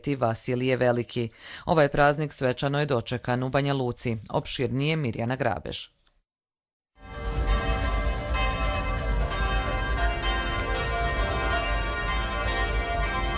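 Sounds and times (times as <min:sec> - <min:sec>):
speech: 0:00.0 - 0:06.0
cathedral church bells pealing at midnight on Orthodox New Year: 0:07.0 - 0:13.3.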